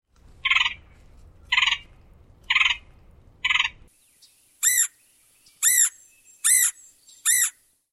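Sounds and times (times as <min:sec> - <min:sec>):
red-headed woodpecker giving harsh rasping calls: 0:00.4 - 0:00.8, 0:01.5 - 0:01.9, 0:02.5 - 0:03.8, 0:04.6 - 0:07.6.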